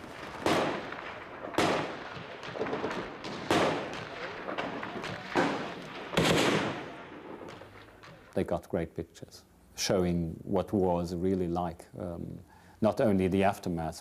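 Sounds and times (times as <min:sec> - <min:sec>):
grenade blast in Afghanistan combat: 0:00.0 - 0:08.4
gunfire in Afghanistan combat: 0:00.0 - 0:08.4
speech: 0:08.4 - 0:14.0.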